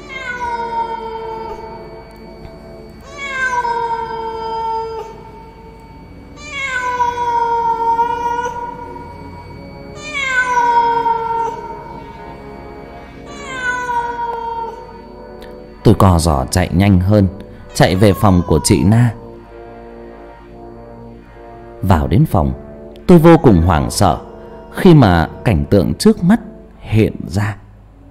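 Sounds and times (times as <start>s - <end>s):
cat meowing mournfully at night: 0.0s - 2.1s, 3.0s - 9.3s, 9.9s - 12.4s, 13.3s - 15.0s, 17.7s - 19.2s
speech: 16.0s - 19.2s, 21.8s - 27.6s.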